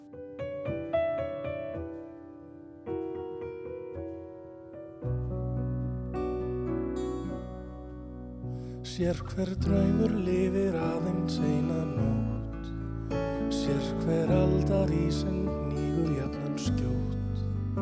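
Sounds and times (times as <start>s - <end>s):
plucked rhythmic chords of an instrumental song intro: 0.1s - 17.8s
deep bass: 5.1s - 17.8s
speech: 9.0s - 12.3s, 13.7s - 17.1s.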